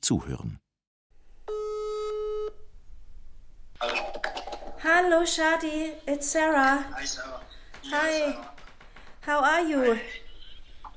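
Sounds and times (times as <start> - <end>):
speech: 0.0 - 0.7, 4.8 - 8.5, 9.2 - 10.2
electronic ringing tone from a phone call: 1.5 - 2.6.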